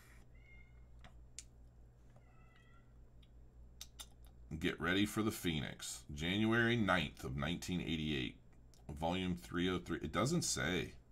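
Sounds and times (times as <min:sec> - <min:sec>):
cat meowing: 0:02.2 - 0:03.0
speech: 0:04.5 - 0:11.0.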